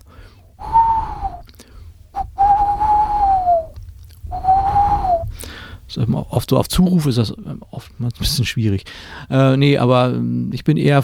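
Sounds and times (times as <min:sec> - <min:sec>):
human voice imitating male tawny owl hoots: 0:00.6 - 0:01.4, 0:02.2 - 0:05.3
speech: 0:06.0 - 0:11.0.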